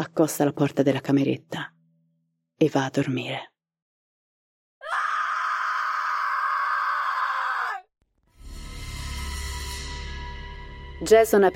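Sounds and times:
speech: 0.0s - 1.7s, 2.6s - 3.5s, 11.0s - 11.5s
woman screaming from upstairs: 4.8s - 7.9s.

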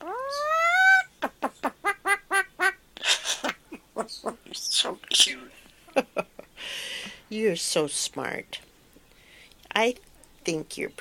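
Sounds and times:
talking bird mimicking a chicken: 0.0s - 5.4s
speech: 7.3s - 8.6s, 9.8s - 10.9s.

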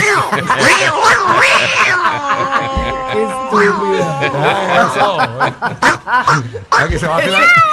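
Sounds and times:
person imitating cat meows and yowls: 0.0s - 5.0s, 7.3s - 7.7s
laughter: 0.0s - 7.7s
speech: 0.3s - 7.7s.

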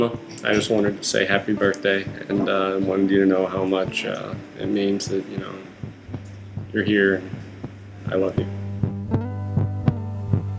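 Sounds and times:
speech: 0.0s - 5.7s, 6.7s - 7.4s, 8.1s - 8.6s
recorded heartbeat thumping: 0.0s - 10.5s
constant low hum: 5.4s - 10.5s.

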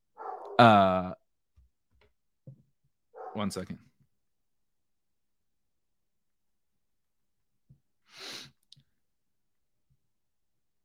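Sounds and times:
dog barking: 0.2s - 0.6s, 3.2s - 3.5s
speech: 0.6s - 1.2s, 3.4s - 3.9s.

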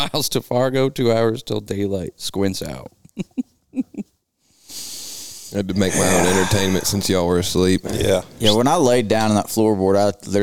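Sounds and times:
speech: 0.0s - 3.5s, 5.5s - 10.4s
person snoring while asleep: 5.7s - 8.2s.

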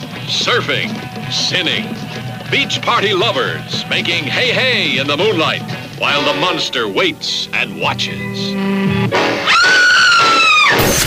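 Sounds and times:
speech: 0.3s - 9.9s
person screaming: 9.4s - 10.8s.

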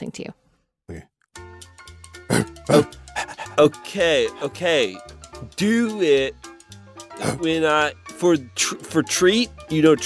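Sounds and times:
speech: 0.0s - 1.1s, 2.7s - 3.0s, 3.6s - 6.4s, 7.2s - 10.0s
low voiced grunting by a person imitating a dog: 0.9s - 1.1s, 2.3s - 3.8s, 7.1s - 7.6s
person imitating a dog panting: 2.3s - 3.9s, 7.1s - 7.6s.

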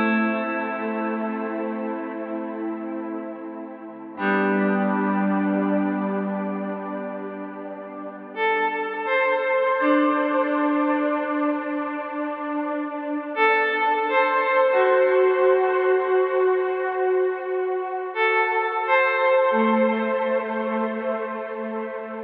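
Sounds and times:
sustained guitar chords through an ambient reverb pedal with slow attack plugin: 0.0s - 22.2s.

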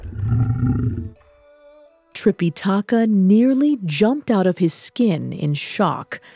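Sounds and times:
deep rumbling tiger roar: 0.0s - 1.2s
speech: 2.2s - 6.3s.

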